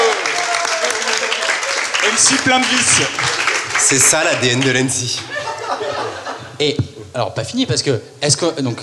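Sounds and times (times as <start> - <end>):
crowd applauding: 0.0 - 6.2
speech: 2.2 - 5.4, 6.6 - 8.8
laughter: 5.1 - 6.7.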